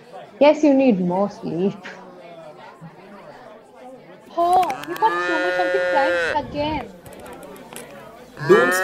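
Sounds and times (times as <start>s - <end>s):
speech: 0.4s - 2.0s, 8.4s - 8.8s
cow mooing: 4.8s - 6.4s, 8.4s - 8.8s.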